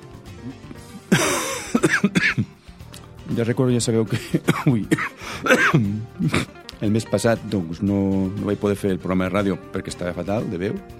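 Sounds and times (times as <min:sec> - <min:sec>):
speech: 0:00.4 - 0:01.3, 0:03.4 - 0:10.9
person coughing: 0:01.1 - 0:02.5, 0:04.1 - 0:06.6.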